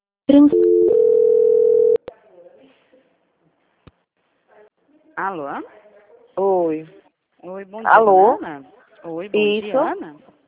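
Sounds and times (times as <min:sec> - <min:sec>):
speech: 0:00.3 - 0:00.7, 0:05.2 - 0:05.8, 0:06.4 - 0:10.3
long steady telephone line tone: 0:00.4 - 0:02.0.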